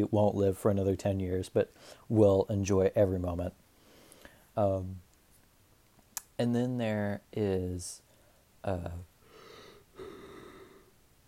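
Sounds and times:
speech: 0:00.0 - 0:03.6, 0:04.6 - 0:05.0, 0:06.4 - 0:08.0, 0:08.6 - 0:09.1
person yawning: 0:10.0 - 0:10.9.

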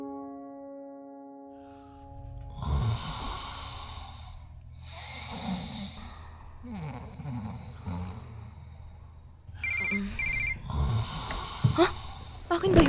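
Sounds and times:
heavy rhythmic snoring breaths: 0:02.3 - 0:12.8
mobile phone ringing with a short repeating electronic tone: 0:09.6 - 0:10.6.

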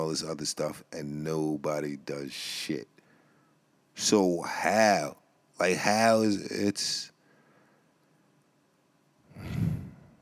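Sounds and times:
speech: 0:00.1 - 0:03.0, 0:04.0 - 0:07.1, 0:09.4 - 0:09.7
heavy exhale blown into a microphone: 0:09.3 - 0:10.2.

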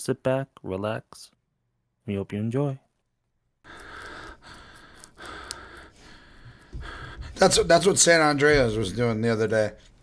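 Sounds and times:
speech: 0:00.0 - 0:01.4, 0:02.1 - 0:02.8, 0:06.8 - 0:09.9
heavy breathing into a microphone: 0:03.7 - 0:08.9.

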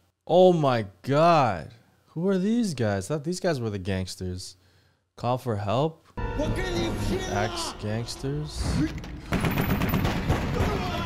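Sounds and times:
speech: 0:00.3 - 0:04.6, 0:05.2 - 0:09.7
gunfire from a shootout scene in a kung fu movie: 0:09.2 - 0:11.0.

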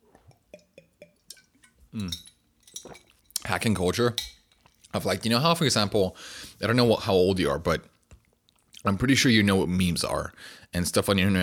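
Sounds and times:
speech: 0:02.0 - 0:02.3, 0:03.5 - 0:07.9, 0:08.8 - 0:11.4
glass clinks: 0:02.0 - 0:03.4, 0:04.2 - 0:04.6.

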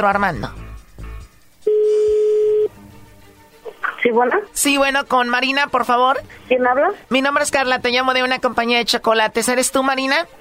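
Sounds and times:
speech: 0:00.0 - 0:00.6, 0:04.0 - 0:10.3
telephone beep while a number is dialed: 0:01.7 - 0:02.7.

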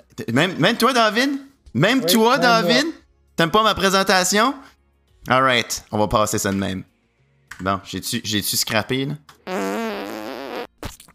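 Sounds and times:
speech: 0:00.2 - 0:06.9, 0:07.5 - 0:09.5
small buzzy wavering fart: 0:09.4 - 0:11.1.

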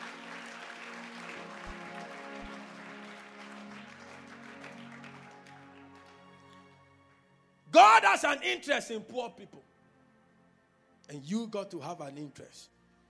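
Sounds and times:
audience clapping: 0:00.0 - 0:07.2
speech: 0:07.8 - 0:09.7, 0:11.1 - 0:12.8.

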